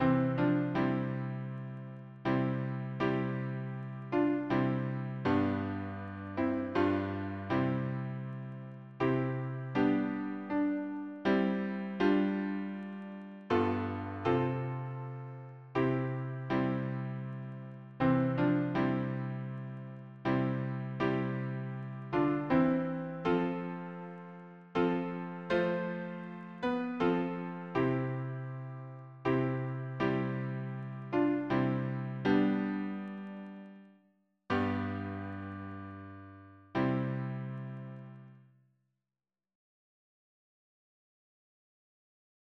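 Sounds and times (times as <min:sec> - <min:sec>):
piano playing hymn harmony: 0:00.0 - 0:33.8, 0:34.5 - 0:38.2.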